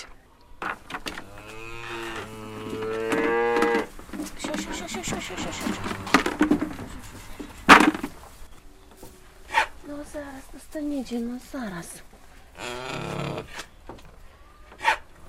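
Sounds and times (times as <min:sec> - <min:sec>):
rustling: 0:00.6 - 0:15.2
goats bleating in a barn: 0:02.0 - 0:07.3
speech: 0:05.3 - 0:06.0, 0:10.1 - 0:13.2.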